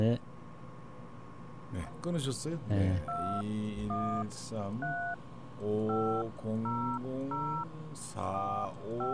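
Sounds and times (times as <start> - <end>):
speech: 0.0 - 0.3, 1.7 - 9.1
voices talking on a phone line: 1.7 - 9.1
telephone keypad dialing tones: 3.0 - 5.2, 5.8 - 7.7, 8.3 - 9.1.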